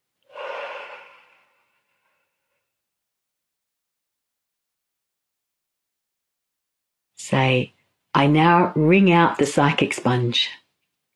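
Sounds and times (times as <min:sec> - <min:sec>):
deep inhale and exhale: 0:00.3 - 0:02.6
speech: 0:07.2 - 0:10.6.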